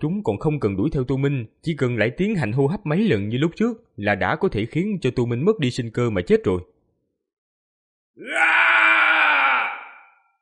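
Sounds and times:
speech: 0.0 - 6.7, 8.2 - 8.7
roaring scream of red creatures: 8.2 - 10.3.

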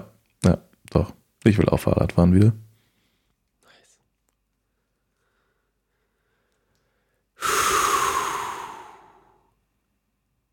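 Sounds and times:
speech: 0.4 - 2.7
long exhalation: 5.3 - 9.6.

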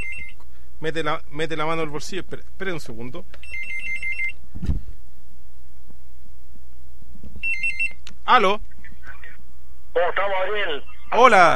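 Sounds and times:
landline telephone ringing in short electronic bursts: 0.0 - 0.4, 3.4 - 4.4, 7.4 - 8.0
speech: 0.8 - 3.8, 8.3 - 8.7, 10.0 - 11.5
dull thump: 4.6 - 5.0.

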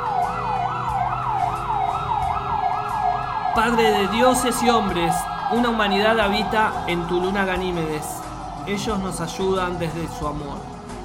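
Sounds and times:
electronic siren wail sweeping up and down: 0.0 - 8.6
speech: 3.6 - 10.7.

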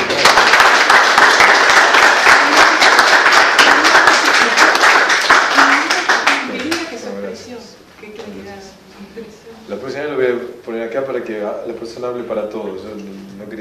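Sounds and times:
audience applause during a class: 0.0 - 7.0
speech: 11.3 - 13.5.

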